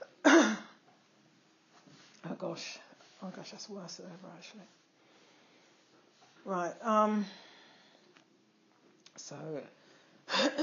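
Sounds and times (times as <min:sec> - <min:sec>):
cough and throat clearing: 0:00.0 - 0:00.8, 0:10.3 - 0:10.6
speech: 0:02.4 - 0:04.8, 0:06.4 - 0:07.5, 0:09.3 - 0:09.8.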